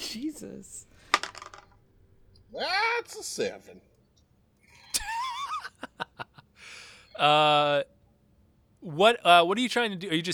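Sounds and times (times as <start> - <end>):
speech: 0.1 - 1.1, 2.5 - 3.9, 7.2 - 7.9, 8.8 - 10.3
dice clattering across a hard tabletop: 1.0 - 1.8
laughter: 4.9 - 6.5.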